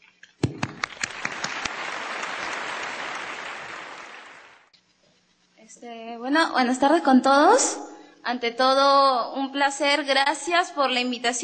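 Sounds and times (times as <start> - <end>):
audience applause for a speaker at a talk: 0.4 - 4.7
speech: 5.8 - 11.4.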